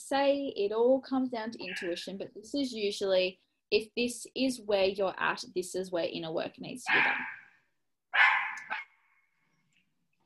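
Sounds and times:
speech: 0.1s - 7.4s
dog giving a high-pitched bark and yelp: 1.7s - 2.0s, 6.9s - 7.5s, 8.1s - 9.0s.

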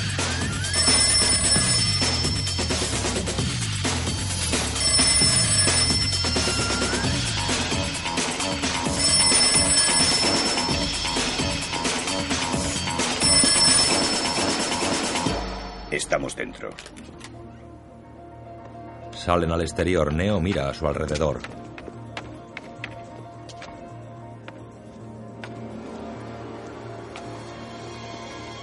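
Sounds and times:
loud dense music: 0.0s - 16.2s
telephone ringing in a room: 0.6s - 3.3s, 4.4s - 15.5s
speech: 16.1s - 17.1s, 19.3s - 21.6s.

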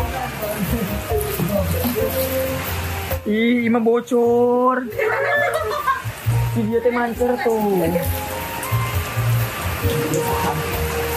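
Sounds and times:
steady rain pattering on a car roof heard from inside: 0.0s - 11.1s
speech: 3.2s - 5.8s, 6.6s - 8.3s
laughter: 4.9s - 6.1s.

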